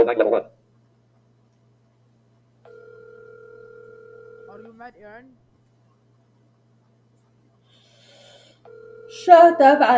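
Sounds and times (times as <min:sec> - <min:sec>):
speech: 0:00.0 - 0:00.6, 0:04.6 - 0:05.4, 0:08.6 - 0:09.9
outgoing phone call ringing tone: 0:02.7 - 0:04.7, 0:08.7 - 0:09.9.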